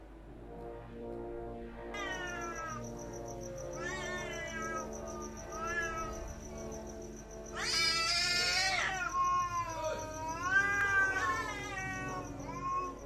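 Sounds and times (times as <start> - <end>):
black cat yowling at night from a banyan tree: 2.0 - 2.8, 3.6 - 6.3, 7.5 - 13.0.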